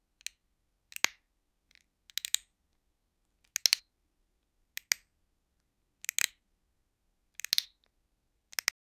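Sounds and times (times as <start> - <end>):
two Lego bricks clicking together: 0.2 - 2.5, 3.4 - 3.9, 4.8 - 5.1, 6.0 - 6.4, 7.4 - 7.9, 8.5 - 8.8.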